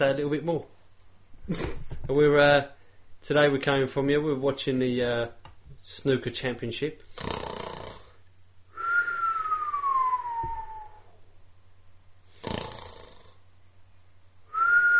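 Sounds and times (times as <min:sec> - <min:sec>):
speech: 0:00.0 - 0:00.8, 0:01.5 - 0:07.4
person's shaky breathy whistling: 0:08.7 - 0:11.3, 0:14.5 - 0:14.9.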